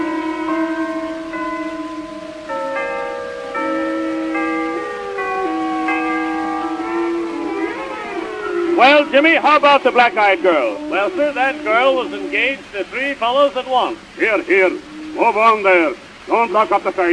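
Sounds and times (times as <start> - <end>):
church chimes playing a slow melody: 0.0 - 12.3
speech: 8.8 - 17.1.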